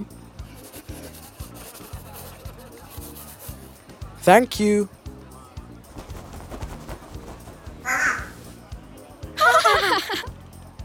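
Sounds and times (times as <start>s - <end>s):
steady low rhythmic background: 0.0s - 10.8s
speech: 4.2s - 5.0s
parrot squawking: 7.8s - 8.4s
laughter: 9.3s - 10.4s.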